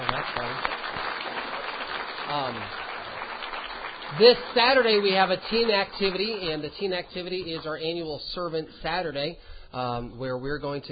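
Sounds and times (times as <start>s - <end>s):
audience clapping for a group of ladies: 0.0s - 8.1s
speech: 2.3s - 2.9s, 4.1s - 10.9s.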